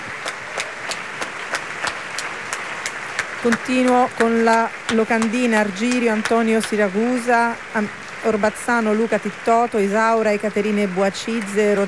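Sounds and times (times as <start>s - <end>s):
large audience applause and ovations after an opera finale: 0.0s - 11.8s
speech: 3.4s - 11.8s.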